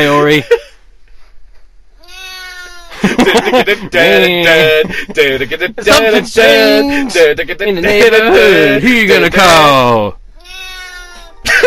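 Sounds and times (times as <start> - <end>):
speech: 0.0 - 0.7, 3.0 - 10.2
cat yowling: 2.0 - 2.9, 10.4 - 11.4
laughter: 2.9 - 8.8, 11.4 - 11.6.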